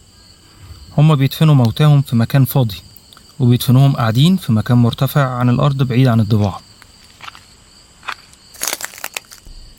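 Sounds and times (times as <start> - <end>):
faint steady hum of insects: 0.0 - 9.7
speech: 1.0 - 6.7
glass being stepped on in a forest: 6.8 - 9.6.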